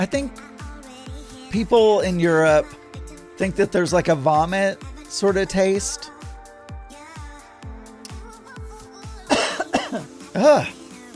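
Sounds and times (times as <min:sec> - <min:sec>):
speech: 0:00.0 - 0:00.5, 0:01.5 - 0:02.8, 0:03.4 - 0:06.2, 0:10.4 - 0:10.8
person coughing harshly and throatily: 0:09.3 - 0:10.8.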